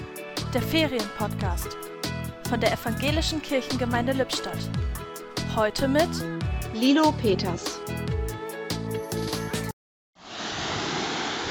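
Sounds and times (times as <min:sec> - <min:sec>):
music: 0:00.0 - 0:09.8
speech: 0:00.5 - 0:05.0, 0:05.6 - 0:07.8
ocean surf washing onto a beach: 0:10.3 - 0:11.5.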